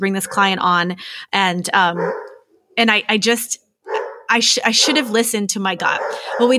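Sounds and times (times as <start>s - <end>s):
speech: 0.0s - 3.6s, 4.3s - 6.5s
dog barking: 0.2s - 0.5s, 2.0s - 2.5s, 3.9s - 5.2s, 5.8s - 6.5s.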